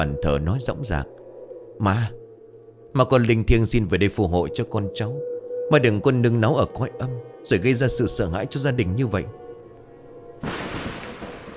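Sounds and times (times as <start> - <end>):
speech: 0.0 - 1.2, 1.8 - 2.2, 2.9 - 9.4, 10.4 - 10.8
lightning strike crashing through a house roof onto a home altar: 10.4 - 11.5.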